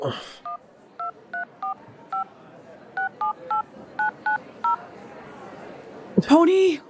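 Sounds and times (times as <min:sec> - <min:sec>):
speech: 0:00.0 - 0:00.4, 0:06.2 - 0:06.8
two-tone beeps from a phone keypad dialing a number: 0:00.4 - 0:02.3, 0:03.0 - 0:04.8.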